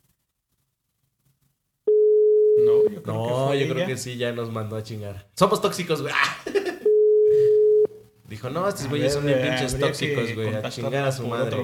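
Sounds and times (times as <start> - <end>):
telephone busy tone after a call is hung up: 1.9 - 2.9, 6.9 - 7.9
speech: 2.9 - 6.6, 8.4 - 11.6
laughter: 6.1 - 6.9.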